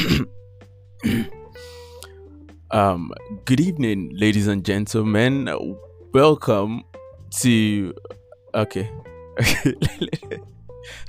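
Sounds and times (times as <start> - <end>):
person clearing throat: 0.0 - 0.4, 1.0 - 1.4
faint breathy sound: 1.0 - 2.3
speech: 2.7 - 11.0.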